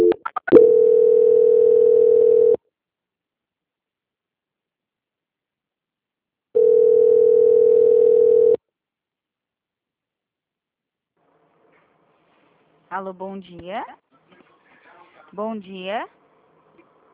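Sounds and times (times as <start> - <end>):
long steady electronic tones of a phone call transfer: 0.0 - 2.6, 6.6 - 8.6
phone line clicks and blips during call transfer: 0.0 - 2.6
speech: 13.0 - 14.0, 15.3 - 16.2.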